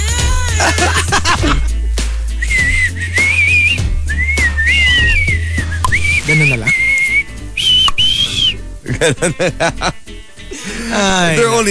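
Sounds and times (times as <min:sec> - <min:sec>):
laughter: 0:00.2 - 0:01.7, 0:08.8 - 0:11.6
voice singing a high whistle-register tone: 0:02.3 - 0:08.7
speech: 0:09.0 - 0:10.0, 0:10.9 - 0:11.6.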